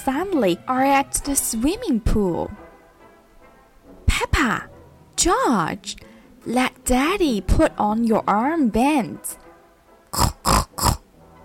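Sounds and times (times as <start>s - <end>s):
speech: 0.0s - 2.6s, 4.4s - 9.4s
voice imitating a mother pig snorting: 10.1s - 11.1s.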